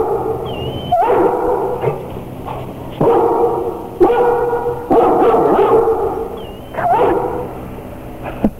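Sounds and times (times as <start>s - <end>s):
male and female Doberman dogs barking: 0.0s - 8.4s
hum: 0.0s - 8.5s
Doberman dogs whimpering: 0.4s - 3.2s, 5.2s - 7.5s.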